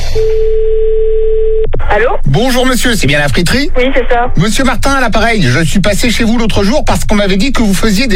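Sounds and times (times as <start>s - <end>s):
steady telephone line tone opening a prank call: 0.2s - 1.8s
speech: 2.0s - 8.1s.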